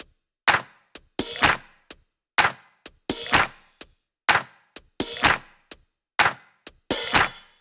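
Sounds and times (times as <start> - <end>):
drum kit beat at 126 BPM: 0.0 - 7.5.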